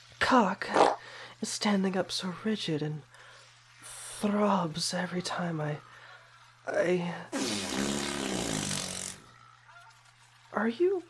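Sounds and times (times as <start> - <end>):
speech: 0.3 - 0.8, 1.4 - 3.1, 4.2 - 5.9, 6.6 - 7.9, 10.6 - 11.0
long loud raspy fart: 0.7 - 1.0, 7.3 - 9.4.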